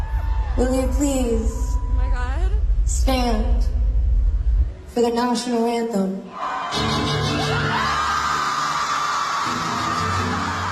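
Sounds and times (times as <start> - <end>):
concert crowd screaming and cheering: 0.0 - 2.5, 6.3 - 10.7
booming low music: 0.0 - 5.0
speech: 0.6 - 1.6, 2.9 - 3.7, 5.0 - 7.2.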